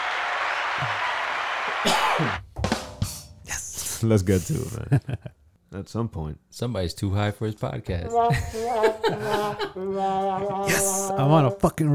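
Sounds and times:
applause: 0.0 - 2.4
speech: 1.8 - 2.4, 4.0 - 11.9
laughter: 8.3 - 9.9
person calling out loudly: 10.6 - 11.2.

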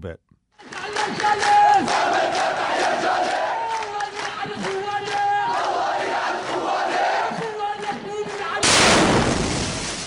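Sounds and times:
speech: 0.0 - 3.4
funeral procession crowd chanting and shouting in rhythmic unison: 0.6 - 8.6
powerful explosion with broad roaring blast: 8.6 - 10.0.

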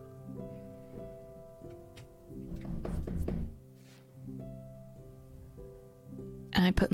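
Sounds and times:
sustained tonal musical background: 0.0 - 6.9
dull knocks on a wooden door: 2.0 - 3.6
speech: 6.7 - 6.9.

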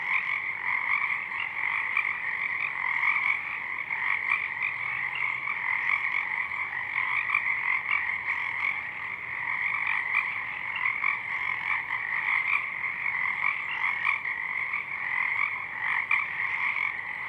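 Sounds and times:
Pacific chorus frogs Pseudacris regilla croaking en masse at dusk: 0.0 - 17.2.

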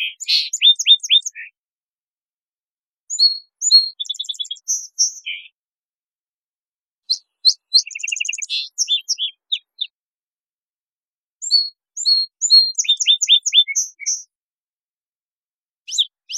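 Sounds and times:
Song Sparrow Melospiza melodia singing in Washington: 0.0 - 1.6, 3.1 - 5.6, 7.0 - 10.0, 11.4 - 14.4, 15.9 - 16.3.

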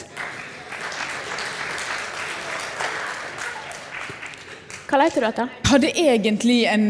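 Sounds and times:
audience applause in a room full of people: 0.0 - 5.0
speech: 4.9 - 6.8.

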